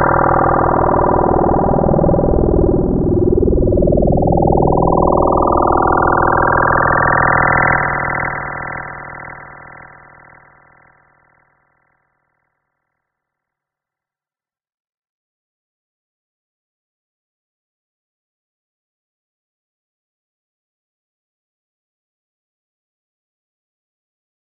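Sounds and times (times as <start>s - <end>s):
spaceship flying: 0.2s - 9.9s.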